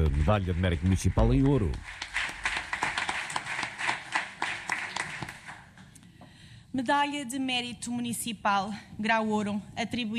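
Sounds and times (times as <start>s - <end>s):
speech: 0.0s - 2.0s, 6.8s - 10.1s
audience applause: 0.0s - 5.7s.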